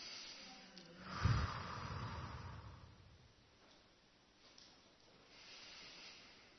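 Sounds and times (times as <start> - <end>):
people breathing in slowly together: 0.0 - 3.1, 5.3 - 6.5.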